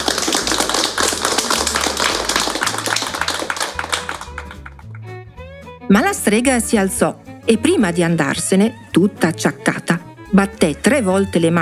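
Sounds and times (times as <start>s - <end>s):
group clapping: 0.0s - 5.2s
speech: 5.9s - 11.6s.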